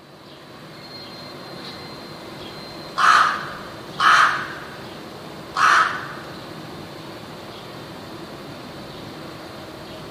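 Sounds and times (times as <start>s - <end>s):
rook giving a harsh grating caw: 3.0s - 4.8s, 5.5s - 6.4s.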